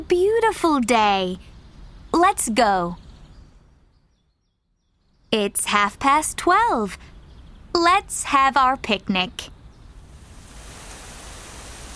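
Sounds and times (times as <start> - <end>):
speech: 0.0 - 1.5, 2.1 - 3.0, 5.3 - 7.1, 7.7 - 9.5
rain: 9.9 - 11.9.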